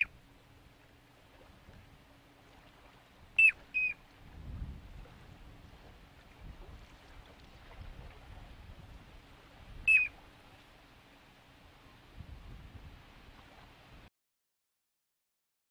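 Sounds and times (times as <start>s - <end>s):
low rumbling background: 0.0s - 13.4s
piping plover whistled peeps over its nest: 3.4s - 4.0s, 9.8s - 10.2s.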